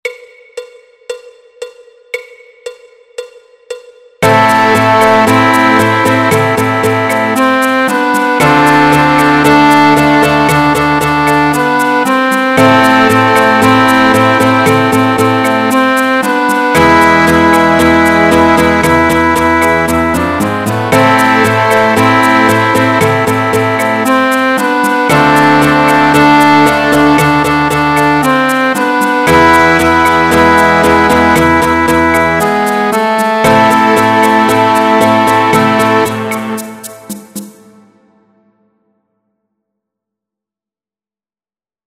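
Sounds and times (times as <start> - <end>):
full orchestra playing Latin groove backing track: 4.2 - 37.7.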